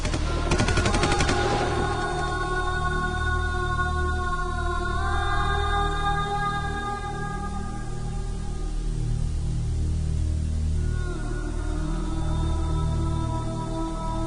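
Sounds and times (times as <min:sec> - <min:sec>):
rapid burst of machine gun fire: 0:00.0 - 0:02.6
steady sustained droning tone: 0:00.0 - 0:14.2.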